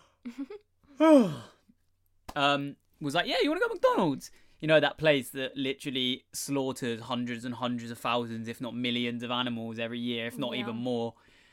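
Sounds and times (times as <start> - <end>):
speech: 0.2 - 1.5, 2.4 - 11.3
person yawning: 1.0 - 1.6.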